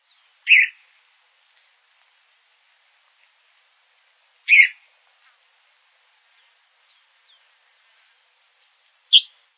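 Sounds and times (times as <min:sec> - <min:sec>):
sabia-do-campo bird calling: 0:00.0 - 0:00.9, 0:04.4 - 0:04.9, 0:09.1 - 0:09.4.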